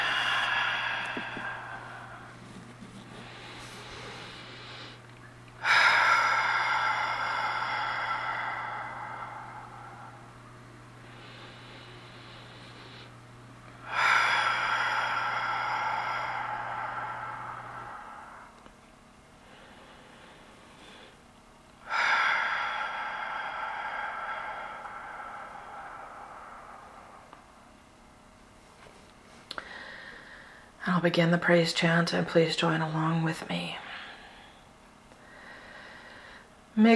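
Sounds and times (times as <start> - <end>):
person taking slow deep breaths: 0.0 - 30.8, 33.7 - 36.8
faint steady hum: 0.0 - 36.9
speech: 30.8 - 33.8, 36.8 - 36.9.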